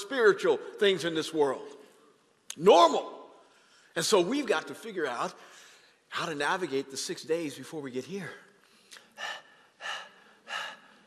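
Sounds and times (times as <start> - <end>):
speech: 0.1 - 1.8, 2.6 - 3.2, 4.0 - 8.5
person imitating thirsty panting: 8.9 - 11.0.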